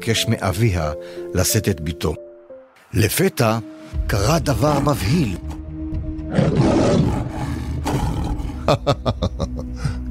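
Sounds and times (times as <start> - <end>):
speech: 0.0 - 2.3, 2.9 - 5.6, 8.7 - 9.3
lion roaring: 6.3 - 8.7
laughter: 8.6 - 9.7.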